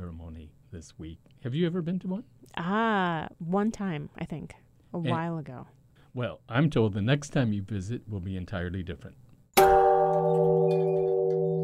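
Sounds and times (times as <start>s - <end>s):
speech: 0.7s - 9.2s
peace bell ringing in a park: 9.6s - 11.6s.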